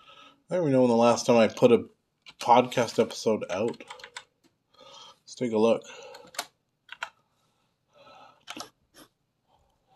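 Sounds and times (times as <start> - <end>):
speech: 0.5 - 4.1, 5.4 - 6.1
clacky keystrokes on a mechanical computer keyboard: 3.5 - 4.4, 6.1 - 7.2.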